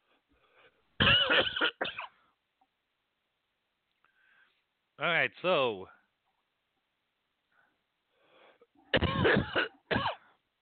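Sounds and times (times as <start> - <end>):
person coughing: 1.0 - 2.2, 8.9 - 10.4
speech: 5.2 - 6.0.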